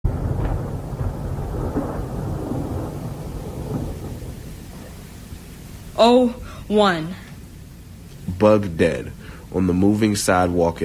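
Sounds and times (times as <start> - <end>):
deep continuous thunder rumble: 0.0 - 6.7
faint rain noise: 0.0 - 10.8
speech: 6.0 - 7.2, 8.4 - 10.8.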